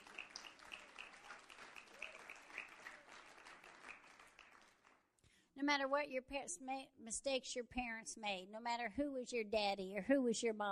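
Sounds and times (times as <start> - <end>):
audience clapping hands in dense applause: 0.0 - 5.0
speech: 5.6 - 10.7.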